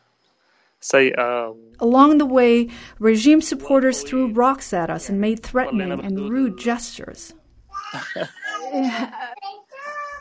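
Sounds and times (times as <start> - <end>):
speech: 0.8 - 9.5
3-year-old girl babbling with giggly lilting vocal sounds: 7.3 - 10.1
3-year-old girl giggling: 7.7 - 10.1.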